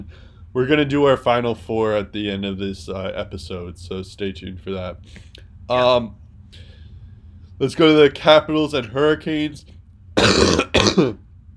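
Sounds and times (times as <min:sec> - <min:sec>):
speech: 0:00.0 - 0:06.7, 0:07.6 - 0:11.2
person clearing throat: 0:10.2 - 0:11.2
person coughing: 0:10.2 - 0:11.2.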